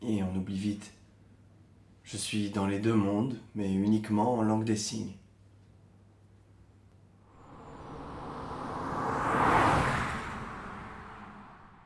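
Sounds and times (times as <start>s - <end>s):
speech: 0.1s - 1.0s, 2.1s - 5.2s
car passing by: 7.2s - 11.8s.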